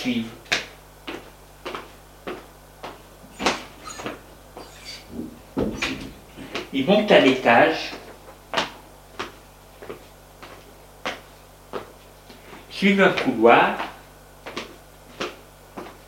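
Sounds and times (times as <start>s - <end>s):
speech: 0.0s - 0.4s, 6.8s - 8.0s, 12.8s - 13.9s
door opening: 3.3s - 6.2s.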